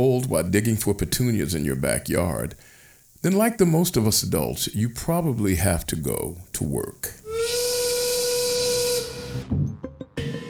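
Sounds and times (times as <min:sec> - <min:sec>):
speech: 0:00.0 - 0:07.2
short sputtering puffs of steam: 0:00.0 - 0:09.5
loud steam whistle blowing with a breathy hiss: 0:07.2 - 0:10.4.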